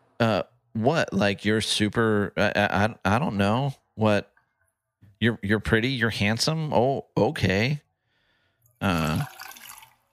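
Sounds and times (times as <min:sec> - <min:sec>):
speech: 0:00.2 - 0:04.3, 0:05.2 - 0:07.8, 0:08.8 - 0:09.4
liquid pouring into a glass: 0:08.8 - 0:10.1.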